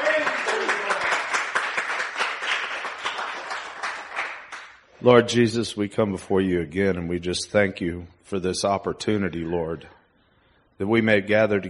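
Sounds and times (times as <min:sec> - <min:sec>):
church congregation clapping during worship: 0:00.0 - 0:05.0
speech: 0:05.0 - 0:10.0, 0:10.8 - 0:11.6.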